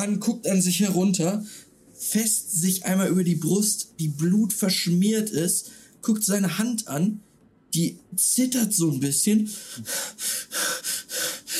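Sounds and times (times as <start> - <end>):
speech: 0.0 - 10.4
voice mimicking a man's heavy ragged breathing: 9.5 - 11.5.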